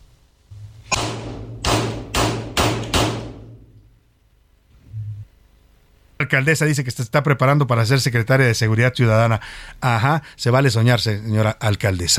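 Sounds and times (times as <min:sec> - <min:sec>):
low steady hum: 0:00.0 - 0:12.1
gunshots during precision target shooting practice: 0:00.9 - 0:03.6
speech: 0:06.3 - 0:12.1.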